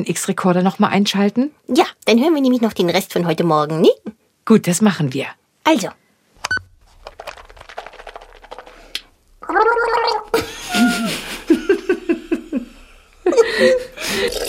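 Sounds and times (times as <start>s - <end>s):
speech: 0.0s - 6.0s
gargling while brushing teeth: 9.4s - 10.4s, 14.1s - 14.4s
laughing: 10.3s - 14.3s.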